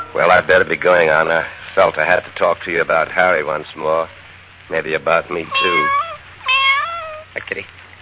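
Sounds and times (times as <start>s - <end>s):
speech: 0.4s - 6.0s, 7.4s - 7.8s
cat meowing: 5.4s - 7.5s.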